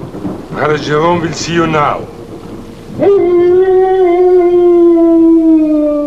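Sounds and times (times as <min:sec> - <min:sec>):
speech: 0:00.6 - 0:02.2, 0:03.0 - 0:03.5
voice imitating an eerie howl: 0:03.0 - 0:06.0.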